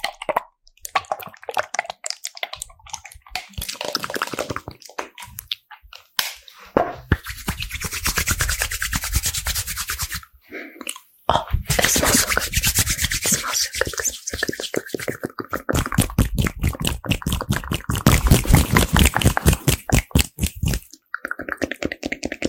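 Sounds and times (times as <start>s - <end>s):
wet mouth clicks and pops: 0.0s - 6.4s, 10.8s - 22.4s
rapid rubbing and scratching: 6.4s - 10.3s, 11.5s - 22.4s.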